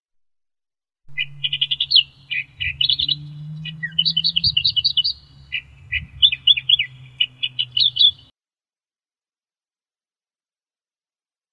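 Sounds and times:
Australian reed warbler song: 1.1 - 8.3.

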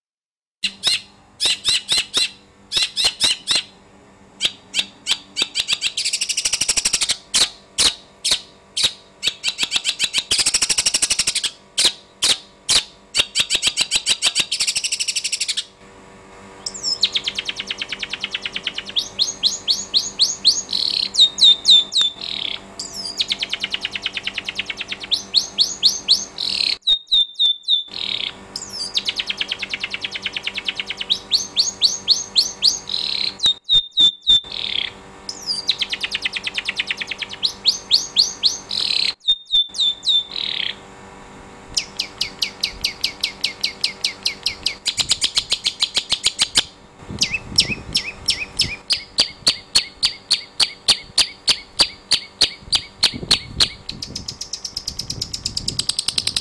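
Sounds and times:
electric cricket repeller: 0.8 - 26.8, 27.9 - 33.7, 34.3 - 56.3.

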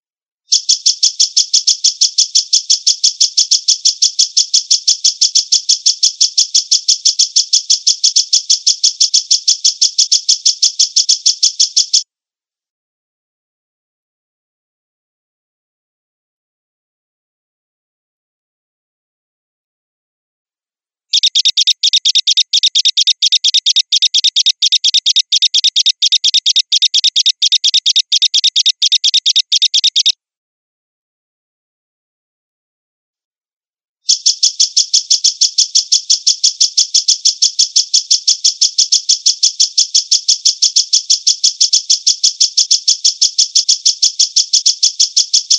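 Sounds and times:
grasshopper chirping: 0.5 - 12.0, 21.1 - 30.1, 34.1 - 45.5.

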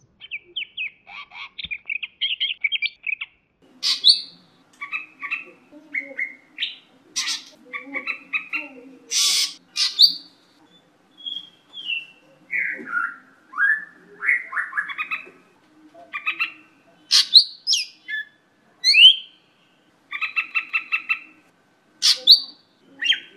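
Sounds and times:
cucak hijau bird singing: 0.0 - 15.4, 16.1 - 21.4, 22.0 - 23.3.

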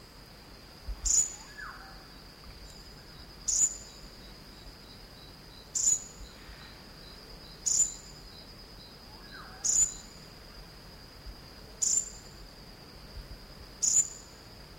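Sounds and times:
continuous thin whine: 0.0 - 14.7
Elegant sunbird Aethopyga duyvenbodei calling on Sangihe: 1.0 - 5.0, 5.7 - 8.2, 9.1 - 10.2.

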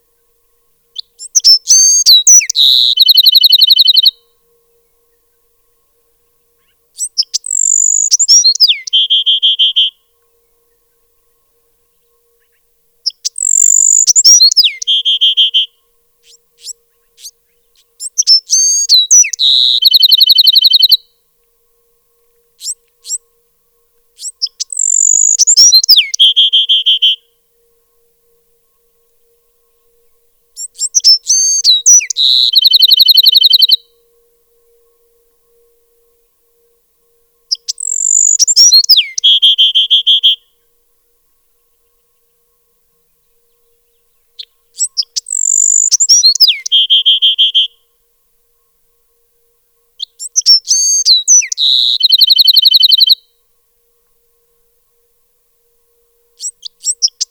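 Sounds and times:
Bewick's wren calling: 0.9 - 4.3, 6.4 - 11.0, 12.4 - 21.1, 22.6 - 23.3, 24.1 - 27.3, 30.6 - 34.0, 37.5 - 40.4, 43.0 - 47.8, 50.0 - 53.3, 56.4 - 57.2.

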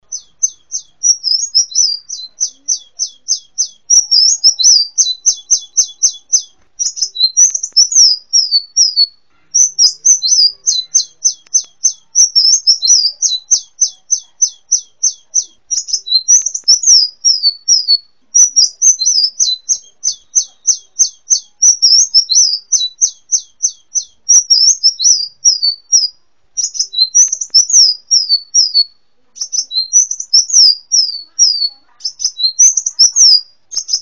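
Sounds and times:
hummingbird: 0.0 - 34.0.

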